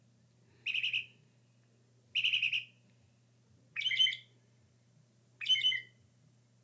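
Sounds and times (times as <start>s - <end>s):
low steady hum: 0.0s - 6.6s
Northern mockingbird singing: 0.7s - 1.1s, 2.2s - 2.7s, 3.8s - 4.3s, 5.4s - 6.0s.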